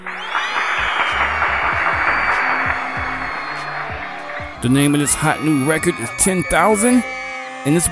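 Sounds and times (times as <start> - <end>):
steady loud applause: 0.0 - 5.8
faint low rhythmic thump: 0.8 - 4.6
speech: 4.6 - 7.9.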